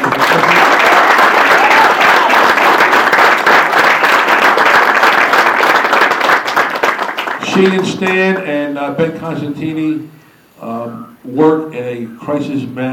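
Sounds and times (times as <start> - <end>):
large audience applauding: 0.0 - 8.4
speech: 7.6 - 12.9.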